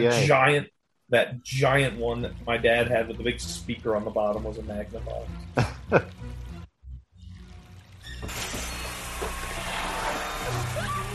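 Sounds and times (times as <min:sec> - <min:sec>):
speech: 0:00.0 - 0:06.4
water spraying forcefully from a drain line: 0:08.0 - 0:11.1.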